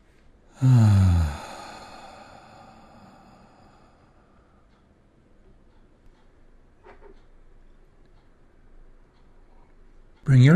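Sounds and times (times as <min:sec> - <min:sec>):
deep voiced sighing exhale during a guided relaxation: 0:00.6 - 0:04.4.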